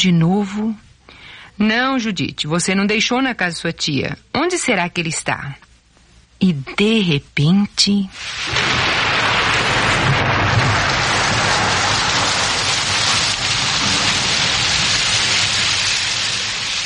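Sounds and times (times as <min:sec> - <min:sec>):
speech: 0:00.0 - 0:00.9, 0:01.6 - 0:05.7, 0:06.4 - 0:08.8
heavy rain pouring: 0:08.2 - 0:16.8.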